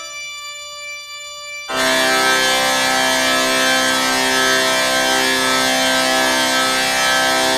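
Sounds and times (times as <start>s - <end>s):
organ harmonic series: 1.7s - 7.5s.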